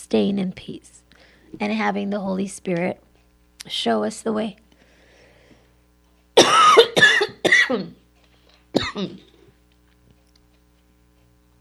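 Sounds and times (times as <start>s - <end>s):
speech: 0.0s - 4.6s, 7.7s - 8.0s, 9.0s - 9.3s
person coughing: 6.4s - 8.0s, 8.8s - 9.4s.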